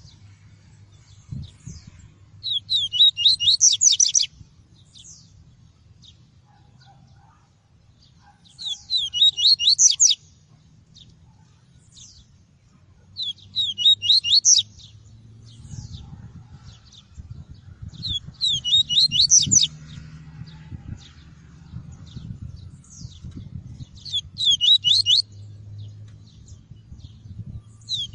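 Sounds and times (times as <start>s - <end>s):
seedeater whistled song of the tui-tui variety: 2.4s - 4.3s, 8.6s - 10.2s, 13.2s - 14.6s, 18.0s - 19.8s, 24.1s - 25.3s, 27.9s - 28.1s.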